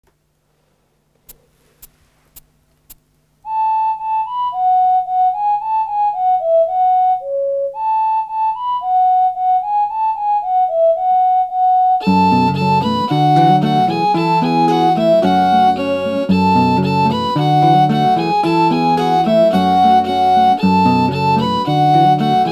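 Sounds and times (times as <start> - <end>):
original Irish traditional music: 3.5 - 22.5.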